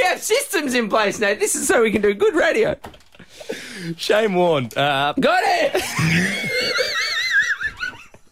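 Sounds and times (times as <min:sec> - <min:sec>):
speech: 0:00.7 - 0:07.0
loud wheezing breath with a high wavering whistle: 0:03.2 - 0:04.0
laughter: 0:05.6 - 0:08.3.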